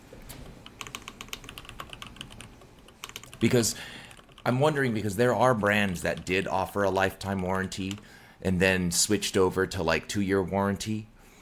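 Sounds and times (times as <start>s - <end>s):
typing on a computer keyboard to look something up: 0.2s - 4.6s, 5.6s - 8.1s
speech: 3.4s - 11.1s.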